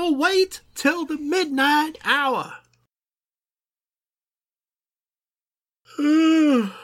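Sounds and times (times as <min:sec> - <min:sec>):
speech: 0:00.1 - 0:02.6, 0:06.0 - 0:06.8
person yawning: 0:05.9 - 0:06.8.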